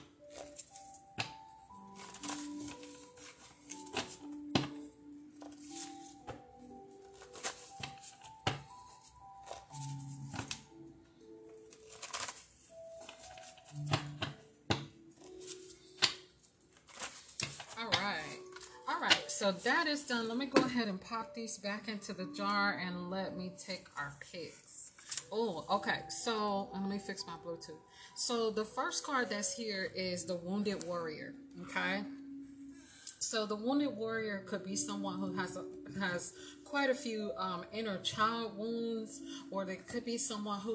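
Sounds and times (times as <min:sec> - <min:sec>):
soft melodic tones or humming: 0:00.0 - 0:40.7
deck of cards shuffled for a card reading: 0:00.3 - 0:04.8, 0:07.0 - 0:10.7, 0:11.6 - 0:19.2
speech: 0:19.4 - 0:24.6, 0:25.3 - 0:32.2, 0:33.3 - 0:40.7.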